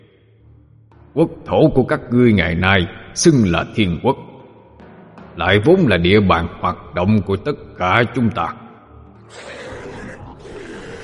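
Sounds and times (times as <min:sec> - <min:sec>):
speech: 0:01.2 - 0:04.3, 0:05.4 - 0:08.6, 0:09.3 - 0:09.6
monstrous beasts roaring: 0:09.2 - 0:11.0.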